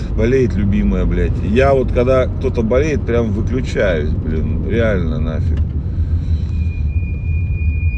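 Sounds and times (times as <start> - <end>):
loud low rumble of a moving car: 0.0 - 7.9
speech: 0.2 - 5.8
thin steady high-pitched squeal of car brakes: 6.2 - 7.9.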